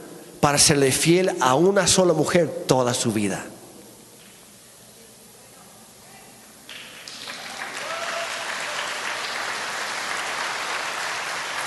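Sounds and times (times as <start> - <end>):
speech: 0.4 - 3.6
soft applause from an audience: 6.7 - 11.6.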